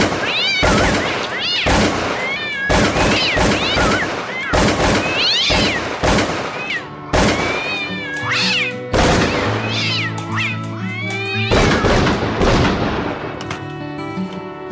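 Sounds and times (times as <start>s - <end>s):
gunshots and rapid bursts of fire: 0.0s - 8.0s, 8.9s - 10.0s, 11.4s - 13.4s
many cats meowing and yowling in an apartment: 0.0s - 12.2s.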